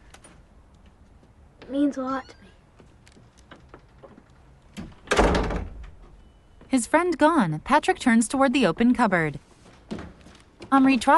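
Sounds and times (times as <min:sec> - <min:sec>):
speech: 0:01.7 - 0:02.5, 0:06.7 - 0:10.0, 0:10.7 - 0:11.1
door closing as someone leaves a room: 0:03.5 - 0:06.2.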